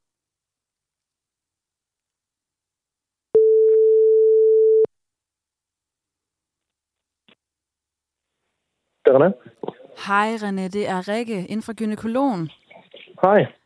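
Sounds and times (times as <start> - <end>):
long steady phone ringback tones: 3.4 - 4.9
speech: 9.1 - 12.6, 13.2 - 13.6.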